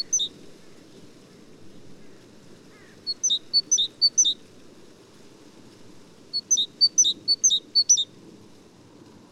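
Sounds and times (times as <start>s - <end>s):
great tit singing see-saw phrases: 0.0s - 0.3s, 3.1s - 4.4s, 6.4s - 8.1s.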